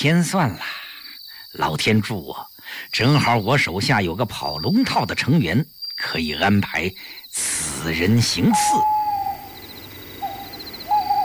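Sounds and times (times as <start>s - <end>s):
speech: 0.0s - 0.8s, 1.5s - 9.0s
owl hooting outside a door: 8.3s - 11.2s.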